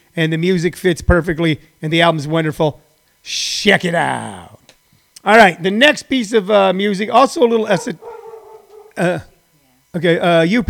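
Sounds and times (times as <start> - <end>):
speech: 0.2 - 4.6, 5.2 - 8.1, 9.0 - 9.3, 9.9 - 10.6
dog barking at a delivery arriving outside the house: 7.7 - 9.1.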